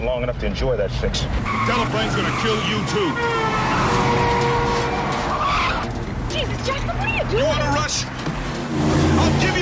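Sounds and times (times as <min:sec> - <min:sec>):
speech: 0:00.0 - 0:04.5, 0:06.6 - 0:09.6
car engine roaring while accelerating down an alleyway: 0:00.0 - 0:09.6
car tyres screeching and skidding: 0:01.3 - 0:09.6.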